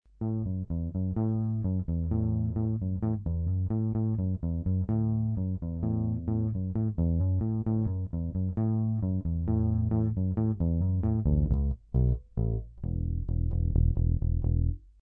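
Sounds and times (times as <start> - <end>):
Gibson EB3 bass guitar: 0.1 - 15.0.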